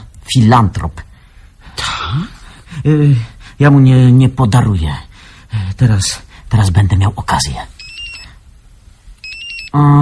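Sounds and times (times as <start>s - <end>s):
speech: 0.3s - 1.1s, 2.1s - 5.1s, 5.8s - 7.7s, 9.7s - 10.0s
telephone ringing: 7.8s - 8.4s, 9.2s - 9.8s.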